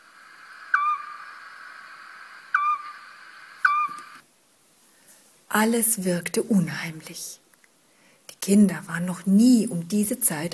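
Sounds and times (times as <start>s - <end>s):
steady hiss: 0.0s - 10.5s
little owl screeching at night: 0.7s - 1.4s, 2.5s - 4.1s
speech: 5.5s - 7.4s, 8.4s - 10.5s.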